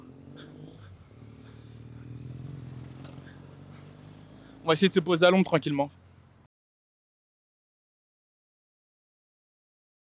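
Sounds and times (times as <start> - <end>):
street traffic of cars rumbling: 0.0 - 6.5
speech: 4.7 - 6.0.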